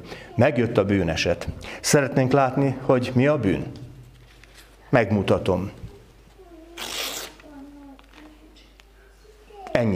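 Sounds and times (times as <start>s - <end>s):
speech: 0.4s - 3.8s, 4.9s - 5.8s, 9.8s - 9.9s
sheet of paper being torn in two: 6.7s - 7.6s.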